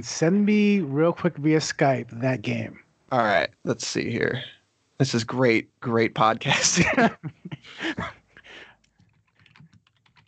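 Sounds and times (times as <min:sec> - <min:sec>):
speech: 0:00.0 - 0:08.2
laughter: 0:06.2 - 0:08.1
typing on a mechanical keyboard: 0:08.9 - 0:10.2.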